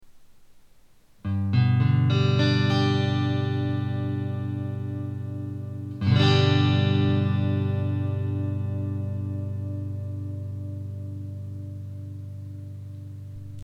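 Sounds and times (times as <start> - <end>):
guitar in G major: 1.2 - 13.6.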